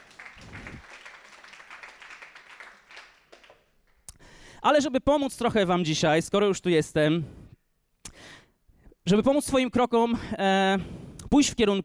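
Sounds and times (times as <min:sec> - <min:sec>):
audience applause: 0:00.0 - 0:03.9
speech: 0:04.6 - 0:07.4, 0:09.1 - 0:11.8.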